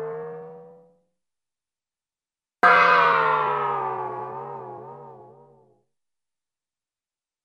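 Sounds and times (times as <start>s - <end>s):
cartoon bell gong hits: 2.6s - 5.5s.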